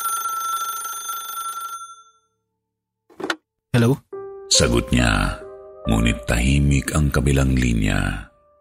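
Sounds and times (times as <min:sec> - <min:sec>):
telephone metallic bell ringing: 0:00.0 - 0:02.5
speech: 0:03.8 - 0:08.3.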